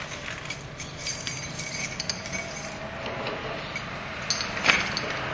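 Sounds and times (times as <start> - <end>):
bunch of keys jingling while being tried in a door lock: 0.1 - 2.8, 3.8 - 5.2.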